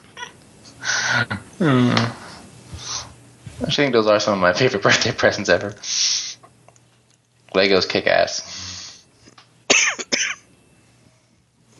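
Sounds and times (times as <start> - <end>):
person coughing: 1.2 - 2.1, 9.7 - 10.4
speech: 1.2 - 2.2, 3.7 - 5.9, 7.6 - 8.5.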